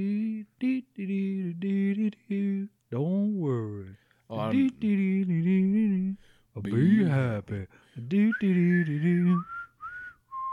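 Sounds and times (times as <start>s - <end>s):
speech: 0.0s - 3.3s, 4.3s - 5.7s, 6.6s - 9.5s
person whistling a cheerful song melody: 8.2s - 10.5s.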